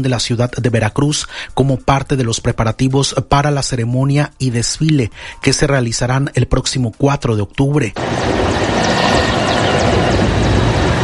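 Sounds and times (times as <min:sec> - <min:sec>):
speech: 0:00.0 - 0:09.5
helicopters flying overhead: 0:08.0 - 0:11.0.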